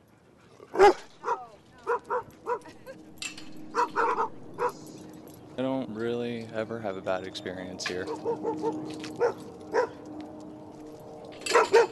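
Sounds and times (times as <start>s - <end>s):
steady low hum: 0.0s - 11.9s
dog barking outdoors at a dog park: 0.7s - 2.7s, 3.7s - 4.9s, 8.1s - 10.0s, 11.5s - 11.9s
speech: 0.8s - 1.0s, 7.0s - 9.6s.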